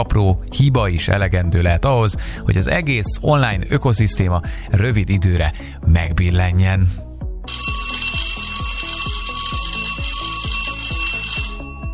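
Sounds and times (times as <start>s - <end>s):
speech: 0.0s - 7.8s
bell signal ringing rapidly: 7.5s - 11.9s.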